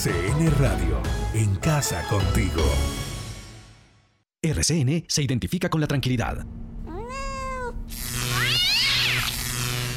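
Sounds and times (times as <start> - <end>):
speech: 0.0 - 3.0, 4.4 - 6.8
cat meowing: 6.8 - 9.4.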